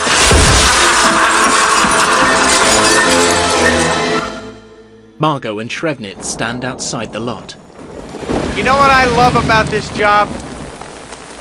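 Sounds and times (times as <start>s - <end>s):
glass shattering from body crashing through window onto glass table: 0.0s - 4.2s
speech: 5.2s - 7.7s, 8.6s - 10.5s.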